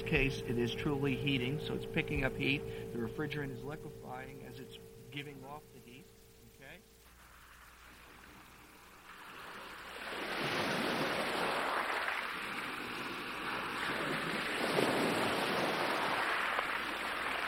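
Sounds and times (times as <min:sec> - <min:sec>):
speech: 0:00.0 - 0:05.8
ocean waves washing onto the shore: 0:07.1 - 0:17.4.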